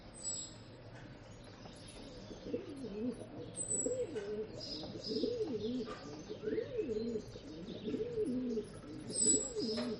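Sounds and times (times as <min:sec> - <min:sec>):
small birds chirping: 0:00.1 - 0:09.9
pigeon cooing in a rural setting in the early morning: 0:02.4 - 0:09.9.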